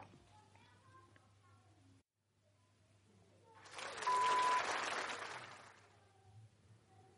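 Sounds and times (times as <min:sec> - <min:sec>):
applause: 0:03.6 - 0:06.0.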